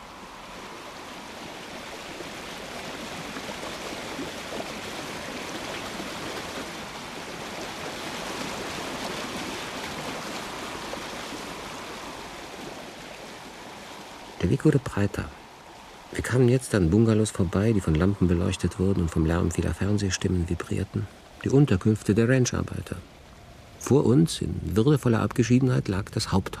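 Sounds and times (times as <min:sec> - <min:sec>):
river water rushing with waterfalls and cascades: 0:00.0 - 0:24.2
speech: 0:14.4 - 0:15.4, 0:16.1 - 0:23.2, 0:23.8 - 0:26.5.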